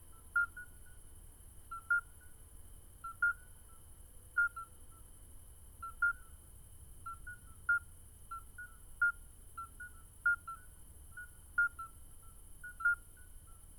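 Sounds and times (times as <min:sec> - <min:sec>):
Alytes obstetricans chorus: 0:01.7 - 0:02.3, 0:03.0 - 0:03.8, 0:05.8 - 0:06.4, 0:07.1 - 0:13.7.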